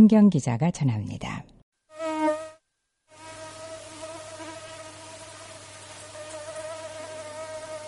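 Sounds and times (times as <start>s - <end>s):
speech: 0.0s - 1.5s
high whining mosquito buzz: 1.9s - 7.8s.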